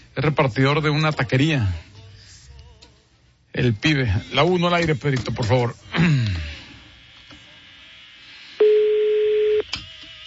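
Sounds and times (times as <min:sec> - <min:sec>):
speech: 0:00.2 - 0:01.9, 0:03.6 - 0:06.2
outgoing phone call ringback tone: 0:08.6 - 0:09.6.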